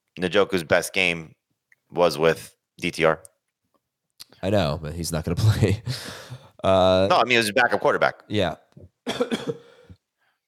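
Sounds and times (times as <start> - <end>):
speech: 0.2 - 3.3, 4.4 - 9.6
harsh coughing fit: 9.0 - 9.9.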